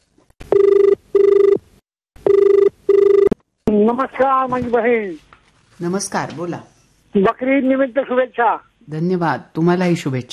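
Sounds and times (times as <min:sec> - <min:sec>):
telephone ringing for an incoming call: 0:00.5 - 0:01.6, 0:02.2 - 0:03.4
speech: 0:03.9 - 0:10.3.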